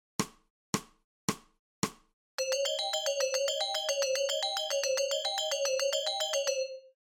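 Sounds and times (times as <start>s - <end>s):
musical scale: 2.4s - 6.9s.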